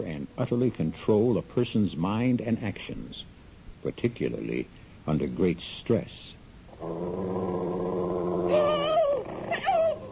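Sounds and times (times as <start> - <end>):
speech: 0.0 - 8.7
wolf growling and snarling while attacking a person: 6.7 - 10.0.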